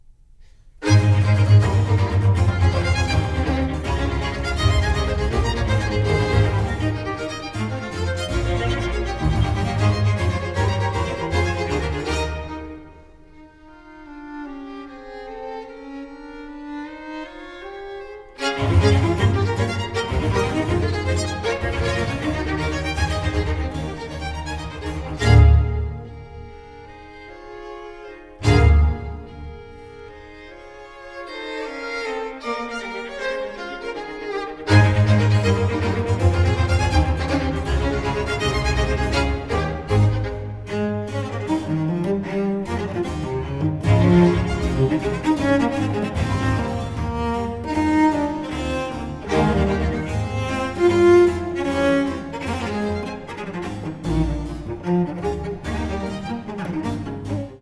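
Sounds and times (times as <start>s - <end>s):
concerto for cello, strings and basso continuo in A major, fast movement: 0.8s - 57.5s.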